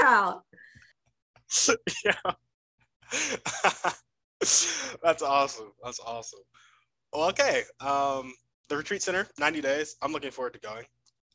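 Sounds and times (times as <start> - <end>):
speech: 0.1 - 0.6, 1.5 - 2.4, 3.1 - 11.3
laughter: 1.5 - 2.3, 3.1 - 6.3, 7.2 - 8.3
person coughing and clearing throat: 1.5 - 2.3, 3.1 - 5.4.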